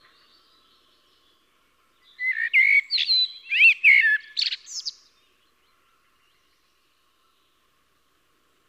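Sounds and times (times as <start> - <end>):
Eurasian blackbird song of mellow flute-like whistles: 2.1 - 5.1.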